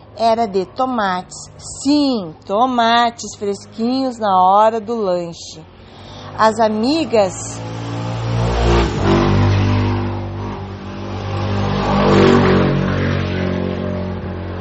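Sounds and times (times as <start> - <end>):
motorcycle engines revving loudly: 0.0 - 14.5
speech: 0.2 - 5.7, 6.4 - 7.8.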